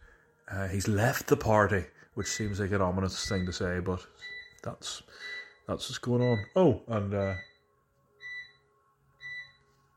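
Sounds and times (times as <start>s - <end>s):
quiet room hum: 0.0s - 9.9s
speech: 0.5s - 7.5s
washing machine end-of-cycle electronic beeps: 2.2s - 9.9s.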